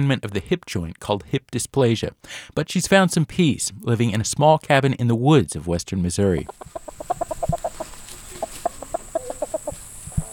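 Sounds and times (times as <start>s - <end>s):
speech: 0.0s - 7.2s
chickens clucking at a small cabin in the woods of western Missouri: 6.2s - 10.3s.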